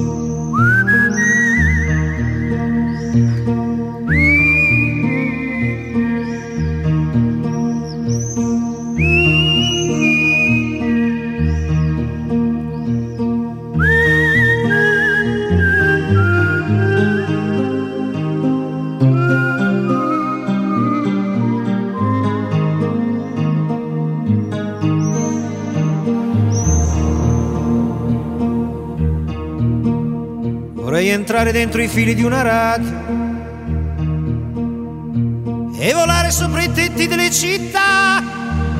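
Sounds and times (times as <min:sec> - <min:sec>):
man whistling a melody: 0:00.0 - 0:12.3, 0:13.7 - 0:23.8, 0:24.5 - 0:27.9
steady instrumental music: 0:00.0 - 0:38.7
speech: 0:31.4 - 0:33.0, 0:35.8 - 0:38.3.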